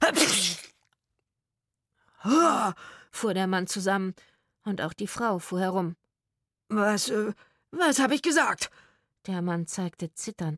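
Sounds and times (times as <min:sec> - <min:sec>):
stifled sneeze with nose held: 0:00.0 - 0:00.8
speech: 0:02.2 - 0:06.0, 0:06.7 - 0:10.5.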